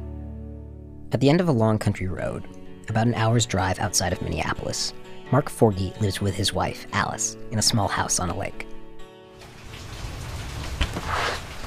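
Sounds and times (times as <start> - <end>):
speech: 1.1 - 8.7
rain falling outside a small lakeside country house: 9.4 - 11.6.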